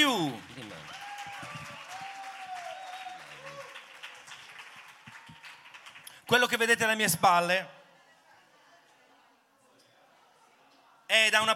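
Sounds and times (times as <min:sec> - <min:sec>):
crowd applauding at a book presentation: 0:00.0 - 0:06.6
person cheering: 0:00.6 - 0:03.8
speech: 0:06.3 - 0:07.8, 0:11.1 - 0:11.5.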